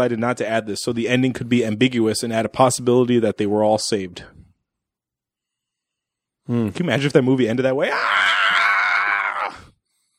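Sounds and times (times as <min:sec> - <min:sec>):
speech: 0:00.0 - 0:04.4, 0:06.5 - 0:08.3
several voices screaming together: 0:07.9 - 0:09.7.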